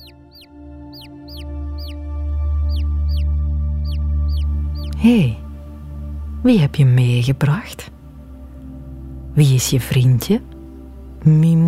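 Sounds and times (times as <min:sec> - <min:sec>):
chick peeping: 0:00.0 - 0:02.0, 0:02.7 - 0:05.0
steady low humming drone: 0:00.0 - 0:11.6
speech: 0:05.0 - 0:05.4, 0:06.4 - 0:07.9, 0:09.4 - 0:10.5, 0:11.2 - 0:11.6.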